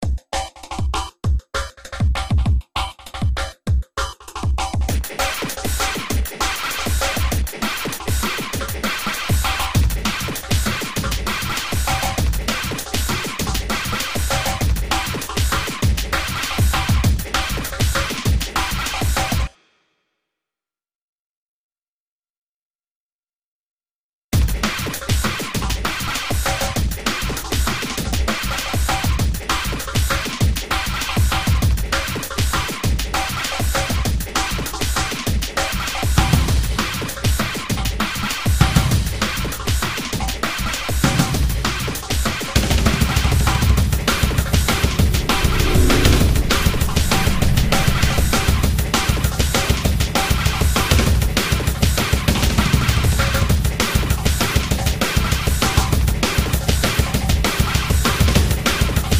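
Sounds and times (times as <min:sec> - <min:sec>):
drums: 0:00.0 - 0:19.6, 0:24.4 - 0:59.1
sound effects: 0:44.4 - 0:49.5.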